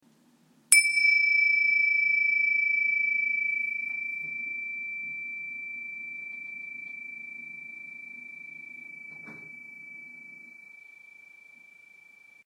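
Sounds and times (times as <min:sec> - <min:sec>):
7.5 cm cymbals with deep tone: 0:00.7 - 0:12.4.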